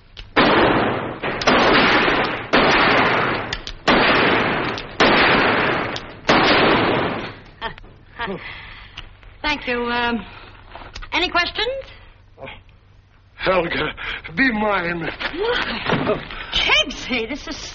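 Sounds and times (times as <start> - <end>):
handgun gunshots: 0.2 - 7.4
speech: 8.3 - 8.7, 9.4 - 10.4, 11.1 - 12.6, 13.4 - 17.7.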